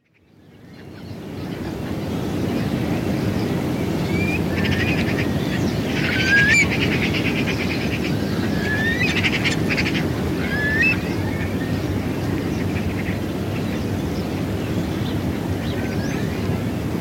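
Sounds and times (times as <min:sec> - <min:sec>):
low wind rumble: 0:00.4 - 0:16.9
Eurasian curlew whistled calls on a winter early morning: 0:04.0 - 0:05.2, 0:05.9 - 0:07.3, 0:08.3 - 0:11.8.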